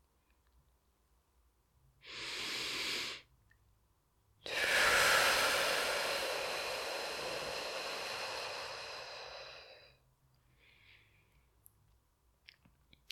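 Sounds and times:
person breathing, short in through nose, long out through mouth: 2.0s - 3.3s, 4.5s - 11.5s.

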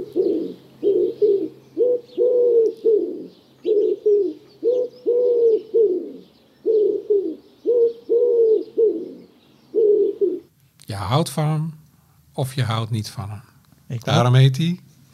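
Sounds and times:
wood pigeon cooing: 0.0s - 10.5s
speech: 11.2s - 11.8s, 12.4s - 14.9s.

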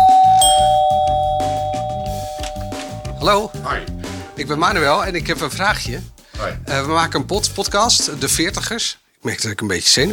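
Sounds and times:
doorbell ringing at a holiday cottage: 0.0s - 4.4s
speech: 3.3s - 10.1s.

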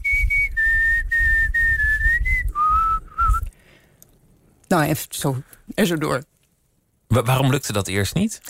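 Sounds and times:
person whistling a tune with mouth: 0.0s - 3.5s
speech: 4.7s - 6.3s, 7.1s - 8.4s.

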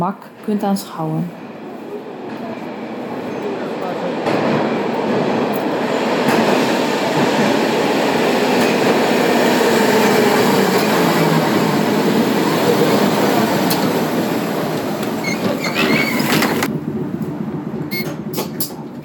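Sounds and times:
speech: 0.0s - 1.4s
moving tram rumbling and clattering: 0.0s - 19.0s
tram rattling and squeaking as it picks up speed: 15.0s - 16.7s
tram metallic screech as it slows: 15.2s - 16.7s.

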